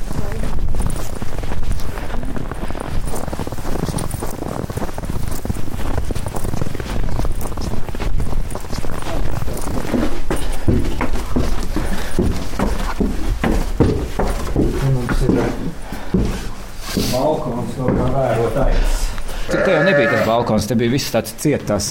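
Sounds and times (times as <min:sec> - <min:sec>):
shuffling: 0:00.0 - 0:21.3
ewes bleating in a winter barn: 0:19.5 - 0:20.6
speech: 0:20.4 - 0:21.8.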